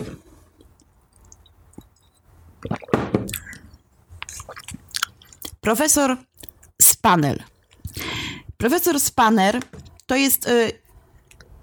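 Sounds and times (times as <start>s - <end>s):
person taking a wet slurp of coffee: 2.6s - 5.4s
small mouth clicks: 2.6s - 5.6s
soft swallowing: 2.6s - 5.6s
speech: 5.6s - 6.3s, 7.0s - 7.5s, 8.6s - 10.8s.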